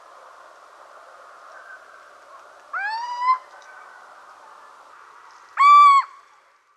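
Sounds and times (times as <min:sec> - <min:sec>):
Little owl mewing call: 0:05.6 - 0:06.1.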